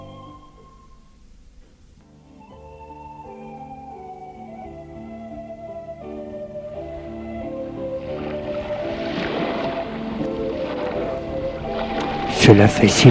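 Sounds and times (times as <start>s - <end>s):
calm sea waves washing onto a beach: 6.5s - 13.0s
speech: 12.5s - 13.0s.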